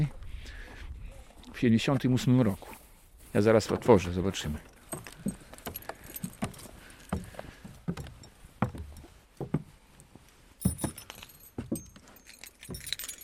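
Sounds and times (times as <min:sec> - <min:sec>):
quiet rustling: 0:01.2 - 0:13.2
speech: 0:01.6 - 0:05.4
bunch of keys jangling while searching for a key: 0:05.1 - 0:07.1, 0:10.6 - 0:13.2.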